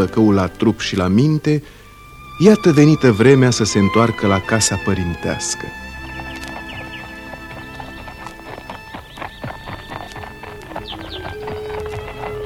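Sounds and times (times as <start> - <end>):
speech: 0.0 - 1.8, 2.4 - 5.8
constant hum: 0.0 - 12.4
stallion whinnying or squealing: 1.8 - 12.4
stallions' hooves clip-clopping: 4.0 - 12.4.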